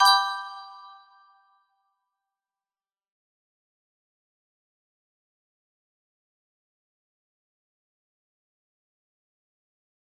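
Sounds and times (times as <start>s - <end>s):
music box melody: 0.0s - 1.0s.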